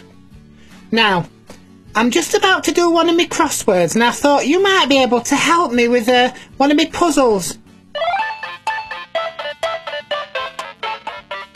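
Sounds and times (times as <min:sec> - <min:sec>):
speech: 0:00.9 - 0:01.4, 0:02.0 - 0:07.6
telephone ringing with an electronic trill: 0:08.0 - 0:11.5.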